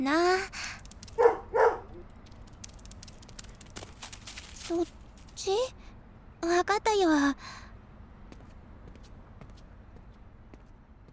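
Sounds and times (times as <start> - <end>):
speech: 0.0 - 1.3, 4.7 - 5.8, 6.4 - 7.6
short sharp dog barks: 1.2 - 2.0.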